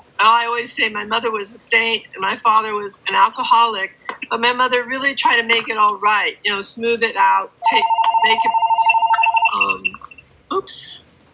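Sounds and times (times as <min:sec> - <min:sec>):
speech: 0:00.2 - 0:08.6, 0:10.6 - 0:11.0
telephone ringing with electronic trill: 0:07.6 - 0:10.2.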